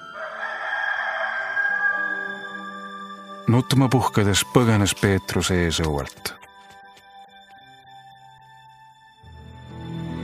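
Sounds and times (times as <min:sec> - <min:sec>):
rooster crowing: 0:00.0 - 0:02.8
soft low musical tone shifting pitch: 0:01.8 - 0:10.2
speech: 0:03.4 - 0:06.4.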